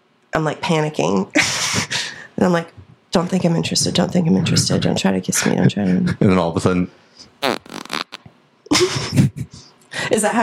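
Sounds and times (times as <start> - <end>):
speech: 0.4 - 7.3, 10.2 - 10.4
farts: 7.4 - 8.3.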